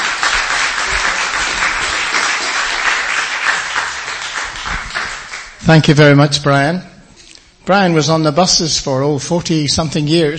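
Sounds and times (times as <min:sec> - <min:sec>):
audience applause at a church gospel service: 0:00.0 - 0:05.6
speech: 0:05.6 - 0:06.9, 0:07.7 - 0:10.3.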